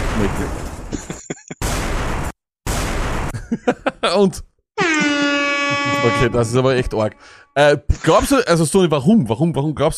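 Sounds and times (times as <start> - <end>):
explosion sound effect blasts: 0.0 - 0.9, 1.6 - 3.5
speech: 0.2 - 1.4, 3.5 - 5.0, 5.8 - 9.9
laughter: 0.9 - 1.6, 3.3 - 4.4, 5.6 - 6.3.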